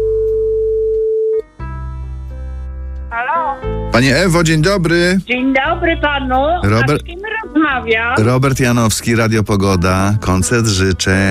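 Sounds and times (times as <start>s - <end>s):
telephone line tone on a radio call-in: 0.0s - 1.4s
speech: 4.0s - 11.3s.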